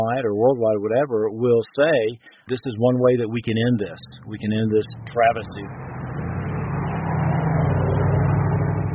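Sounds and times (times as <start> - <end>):
speech: 0.1 - 5.9
car engine idling outside a liquor store: 3.2 - 8.9.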